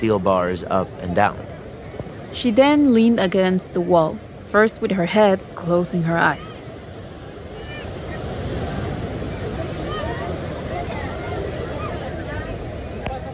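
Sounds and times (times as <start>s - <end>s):
speech: 0.0s - 1.5s, 2.3s - 6.5s
ocean waves crashing onto a beach: 0.0s - 13.3s.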